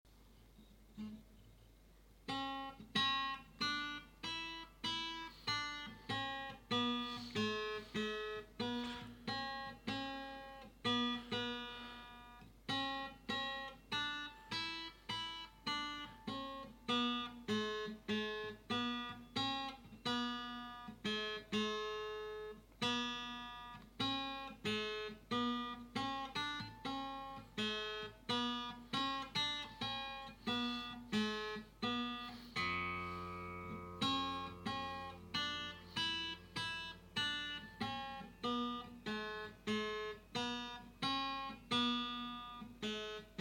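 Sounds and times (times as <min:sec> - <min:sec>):
guitar: 0:00.1 - 0:43.3.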